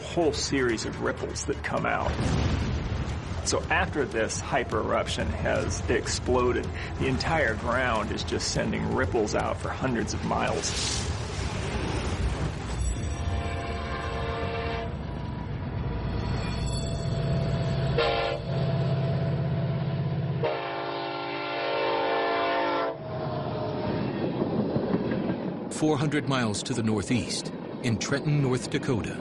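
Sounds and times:
oil tanker freight train passing: 0.0s - 2.2s, 3.1s - 29.2s
speech: 0.2s - 2.7s, 3.4s - 11.1s, 25.8s - 29.2s
freight train horn blasts: 13.3s - 15.2s, 17.5s - 24.2s.

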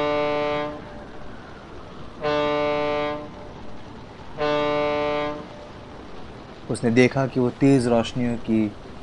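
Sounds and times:
ship horn blasts: 0.0s - 1.3s, 2.0s - 6.1s
steady rumbling background: 0.0s - 9.0s
speech: 6.7s - 8.9s.

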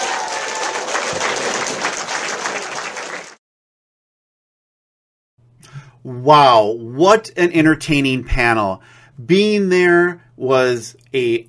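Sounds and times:
audience applauding: 0.0s - 3.4s
speech: 6.0s - 11.4s.

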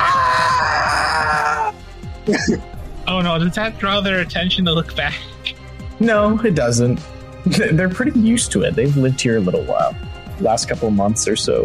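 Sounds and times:
loud eerie demon-like howling shriek from within the deepest dish: 0.0s - 1.8s
quieter rumbling background: 0.0s - 11.6s
speech: 2.3s - 5.3s, 6.0s - 11.6s.

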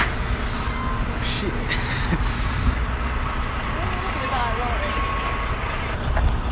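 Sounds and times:
heavy lorries and cars crossing a bridge: 0.0s - 6.4s
low engine drone: 0.0s - 6.4s
speech: 1.4s - 2.4s.

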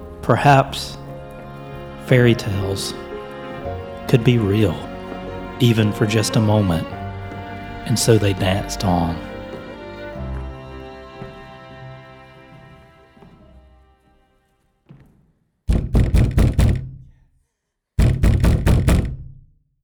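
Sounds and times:
soft music: 0.0s - 14.6s
speech: 0.3s - 1.0s, 2.1s - 3.1s, 4.1s - 4.9s, 5.6s - 7.0s, 7.9s - 9.3s
loud fist knocks pounding on a door: 15.7s - 17.2s, 18.0s - 19.5s.

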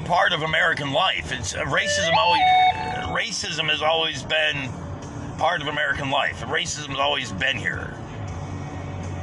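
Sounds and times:
speech: 0.1s - 4.8s, 5.4s - 8.0s
electronic phone notification chime: 2.0s - 2.9s.

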